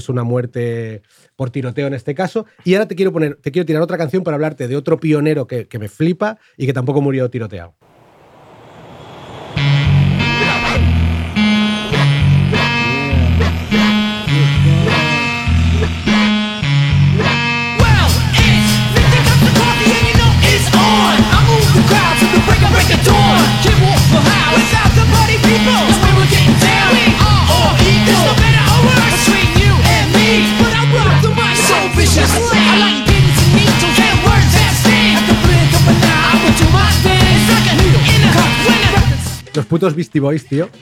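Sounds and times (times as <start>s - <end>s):
speech: 0.0s - 8.0s, 39.6s - 40.8s
hip-hop track with punchy repeating bass groove: 9.9s - 40.0s.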